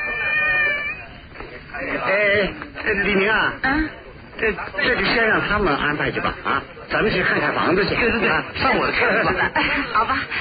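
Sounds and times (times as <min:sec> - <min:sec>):
voice imitating a cat meow: 0:00.0 - 0:01.1
speech: 0:02.1 - 0:10.3
laughter: 0:08.9 - 0:10.3.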